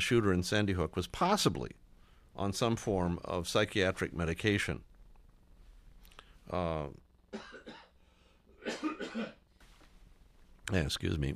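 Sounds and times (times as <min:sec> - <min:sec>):
speech: 0:00.0 - 0:01.8, 0:02.4 - 0:04.9, 0:06.5 - 0:07.6, 0:10.7 - 0:11.3
person coughing: 0:07.3 - 0:09.5.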